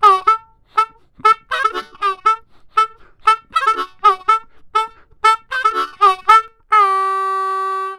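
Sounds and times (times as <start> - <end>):
blues harmonica in A: 0.0 - 7.9.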